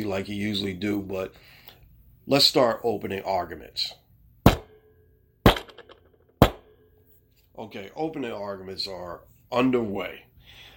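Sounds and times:
speech: 0:00.0 - 0:01.6, 0:02.3 - 0:04.0, 0:07.6 - 0:10.7
wooden gavel banging: 0:04.5 - 0:04.8, 0:05.5 - 0:06.8.

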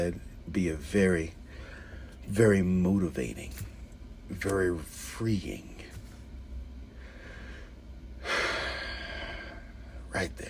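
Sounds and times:
speech: 0:00.0 - 0:01.4, 0:02.3 - 0:03.7, 0:04.3 - 0:05.7, 0:10.2 - 0:10.4
deep breath: 0:01.4 - 0:02.2, 0:06.9 - 0:10.1.

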